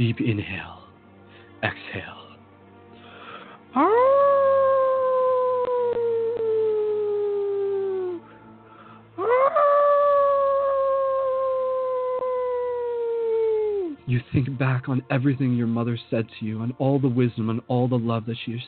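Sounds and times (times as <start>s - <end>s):
speech: 0.0s - 0.8s, 1.6s - 2.2s, 3.7s - 4.4s, 14.1s - 18.6s
wolf howling: 3.8s - 8.2s, 9.2s - 14.0s.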